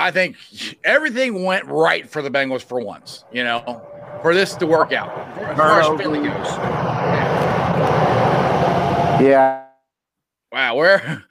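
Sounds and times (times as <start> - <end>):
speech: 0.0 - 7.3, 9.2 - 9.6, 10.5 - 11.2
loud steady airplane roar: 2.2 - 9.4.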